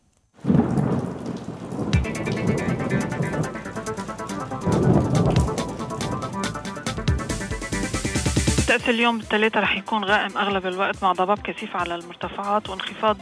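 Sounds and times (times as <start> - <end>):
wind gusts in a thunderstorm: 0.4 - 8.1
deep thunder rumbling with sharp cracks: 0.4 - 9.4
heavy rain pouring: 0.4 - 10.8
speech: 8.7 - 13.1.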